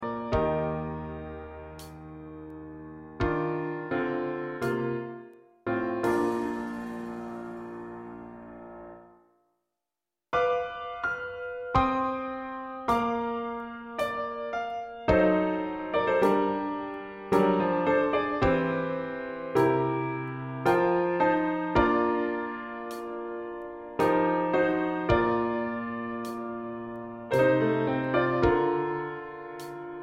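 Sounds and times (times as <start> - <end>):
piano: 0.0 - 9.4, 10.3 - 30.0
drum: 6.0 - 8.0.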